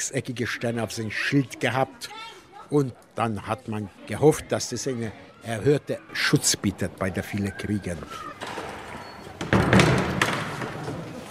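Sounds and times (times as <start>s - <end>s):
speech: 0.0s - 8.4s
door rattle: 8.3s - 11.2s.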